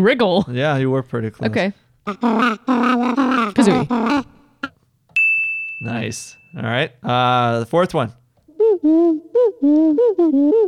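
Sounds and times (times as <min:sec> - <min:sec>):
speech: 0:00.0 - 0:04.4, 0:05.8 - 0:10.6
cartoonish video game mole character voice in sing-song gibberish: 0:02.1 - 0:04.8, 0:08.5 - 0:10.6.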